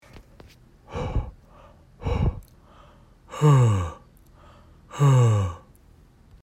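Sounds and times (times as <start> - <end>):
deep sigh: 0.9 - 5.7.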